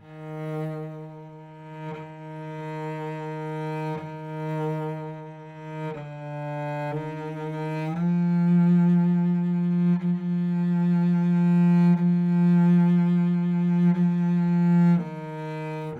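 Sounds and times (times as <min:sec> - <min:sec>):
dark horror cello in C: 0:00.0 - 0:15.9.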